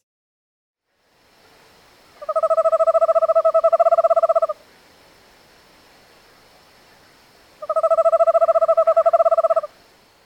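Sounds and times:
owl giving quavering whinny-like trills: 2.2s - 4.6s, 7.6s - 9.8s.

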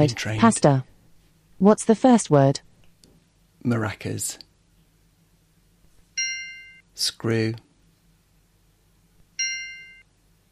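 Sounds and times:
speech: 0.0s - 0.9s, 1.6s - 2.7s, 3.6s - 4.4s, 7.0s - 7.6s
low hum: 0.0s - 10.5s
single bright bell ding used as a cue in a word memory game: 6.2s - 6.8s, 9.4s - 10.0s.

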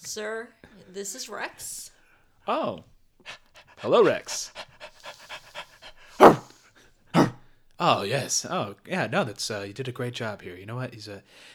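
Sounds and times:
speech: 0.0s - 4.6s, 7.8s - 11.5s
dog panting: 3.2s - 6.5s, 7.2s - 7.4s
sharp vocal bursts: 6.2s - 6.4s, 7.2s - 7.4s.

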